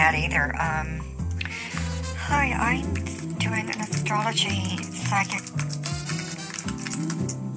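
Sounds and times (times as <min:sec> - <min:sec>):
speech: 0:00.2 - 0:01.2, 0:02.3 - 0:05.8
typing on a computer keyboard: 0:04.7 - 0:07.4.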